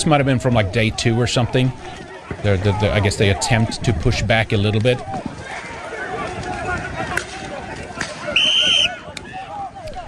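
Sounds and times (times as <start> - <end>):
speech: 0.0 - 5.6
dense noisy street crowd commotion with many voices: 0.0 - 10.0
shrill whistle blast: 8.4 - 9.0.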